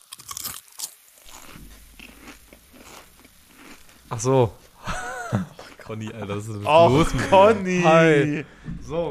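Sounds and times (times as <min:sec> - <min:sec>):
crunching peanut puff snack: 0:00.0 - 0:04.4
chewing and munching of peanut puff snack: 0:00.0 - 0:06.7
speech: 0:04.1 - 0:04.6, 0:05.3 - 0:09.0
laughter: 0:04.8 - 0:08.6.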